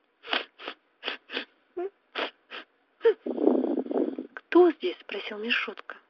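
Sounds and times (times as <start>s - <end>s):
shaky whimpering breath: 0.2s - 1.5s, 2.2s - 4.3s
short sharp nasal sniffs from a plush toy dog: 0.2s - 1.5s, 2.2s - 2.7s
speech: 4.6s - 5.9s.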